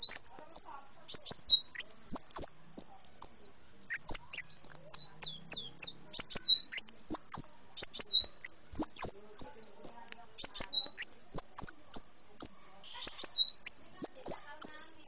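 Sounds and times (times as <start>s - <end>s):
sunbird twittering: 0.0s - 15.0s.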